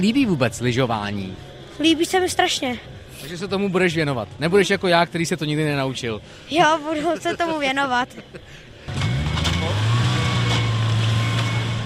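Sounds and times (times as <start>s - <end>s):
speech: 0.0s - 9.0s
snowmobile engine roaring at a ski slope in Kašperské hory: 8.9s - 11.8s.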